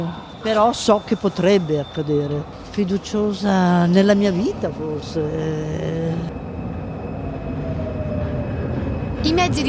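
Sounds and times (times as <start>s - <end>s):
speech: 0.0s - 6.4s, 9.2s - 9.6s
metro train rumbling through a busy Milan subway station: 0.0s - 9.6s.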